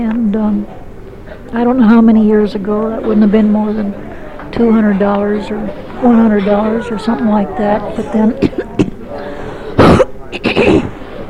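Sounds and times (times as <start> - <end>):
speech: 0.0 - 0.8, 1.5 - 8.6
person coughing: 7.8 - 11.0.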